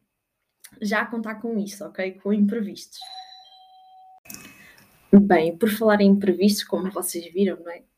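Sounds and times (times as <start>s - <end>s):
speech: 0.8s - 3.2s, 5.1s - 7.9s
doorbell ringing at the door: 3.0s - 4.2s.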